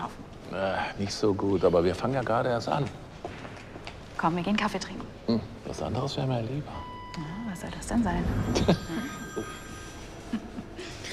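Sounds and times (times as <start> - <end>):
speech: 0.5 - 3.1, 4.2 - 9.6
office telephone ringing: 8.2 - 10.3.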